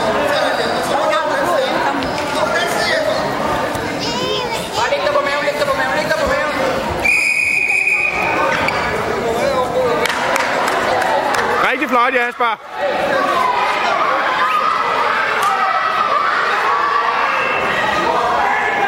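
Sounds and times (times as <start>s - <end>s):
chattering voices in a busy gym: 0.0s - 18.8s
shrill whistle blast in a gym: 7.0s - 8.3s
speech: 12.2s - 13.3s.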